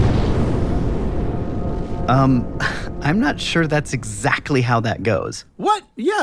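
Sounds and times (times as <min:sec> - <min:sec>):
loud deep explosion boom: 0:00.0 - 0:04.6
speech: 0:02.1 - 0:06.2.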